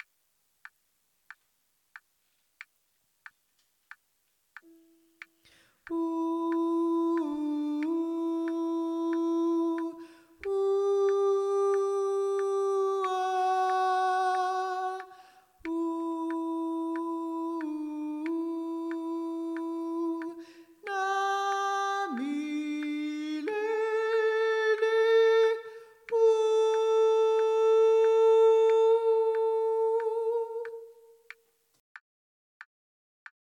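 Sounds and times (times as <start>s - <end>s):
mezzo-sopranos singing: 5.8s - 31.2s.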